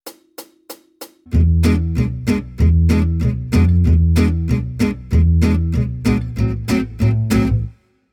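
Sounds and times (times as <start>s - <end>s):
jazz guitar: 1.3s - 7.8s.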